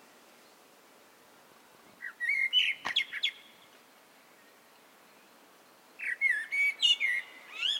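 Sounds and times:
Common blackbird (Turdus merula) song: 1.9 - 7.7.

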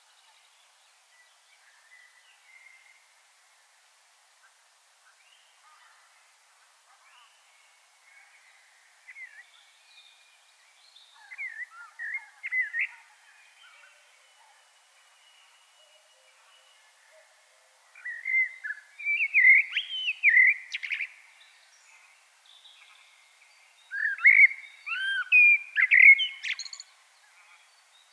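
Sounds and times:
common blackbird Turdus merula singing: 10.8 - 17.3, 18.0 - 21.2, 22.6 - 28.1.

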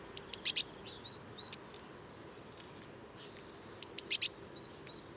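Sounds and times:
Eurasian blue tit Cyanistes caeruleus calling: 0.2 - 1.6, 3.2 - 5.1.

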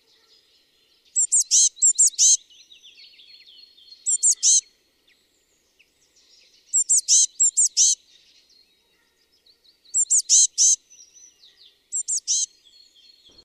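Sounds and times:
faint bird twittering: 0.0 - 13.4
Eurasian blue tit Cyanistes caeruleus sharp high-pitched chirps: 1.1 - 4.7, 6.6 - 8.0, 9.8 - 13.4.

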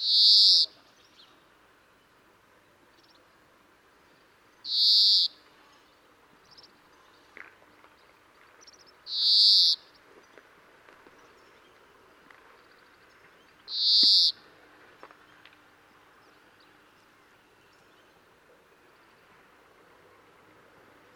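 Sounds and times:
European greenfinch Chloris chloris wheezing call: 0.0 - 0.8, 4.7 - 5.4, 9.1 - 9.8.

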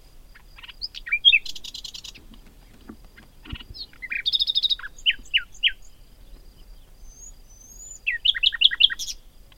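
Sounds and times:
common nightingale Luscinia megarhynchos singing: 0.0 - 9.4.

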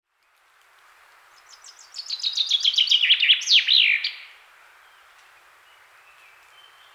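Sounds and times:
Common chaffinch Fringilla coelebs singing: 1.4 - 6.9.

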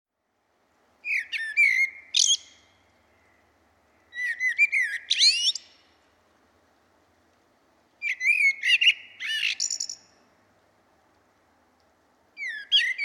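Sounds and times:
common blackbird Turdus merula singing: 1.0 - 3.4, 4.0 - 5.9, 8.0 - 10.1, 12.4 - 13.0.

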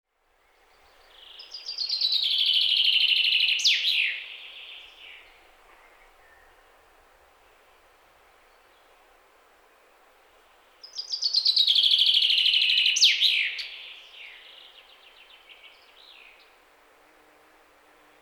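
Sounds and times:
common chaffinch Fringilla coelebs singing: 0.7 - 6.6, 10.8 - 16.6.

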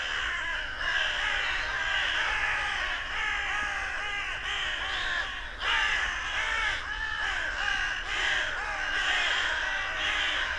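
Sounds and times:
carrion crows Corvus corone cawing: 0.0 - 10.5.

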